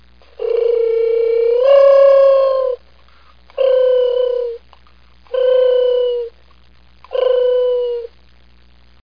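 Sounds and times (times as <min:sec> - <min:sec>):
low steady hum: 0:00.0 - 0:09.0
mourning dove cooing: 0:00.2 - 0:02.8, 0:03.5 - 0:04.6, 0:05.3 - 0:06.4, 0:07.1 - 0:08.1.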